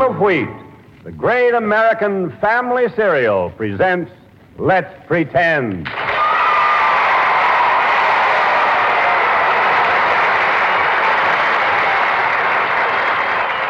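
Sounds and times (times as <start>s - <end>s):
speech: 0.2s - 6.1s
studio audience applause and cheering: 5.9s - 13.6s.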